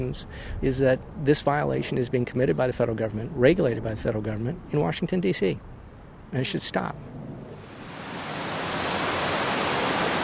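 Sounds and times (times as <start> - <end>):
speech: 0.0 - 5.7, 6.3 - 7.2
river water pouring through a channel into a water treatment plant: 7.6 - 10.2.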